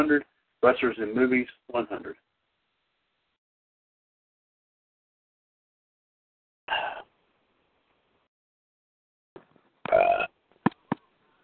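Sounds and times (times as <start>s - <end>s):
speech: 0.0s - 2.2s
loud belches: 9.9s - 10.4s.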